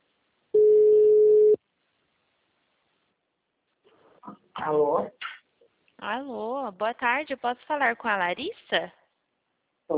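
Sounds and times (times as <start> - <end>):
ringback tone on an outgoing telephone call: 0.6 - 1.6
speech: 4.6 - 5.3, 6.0 - 9.0.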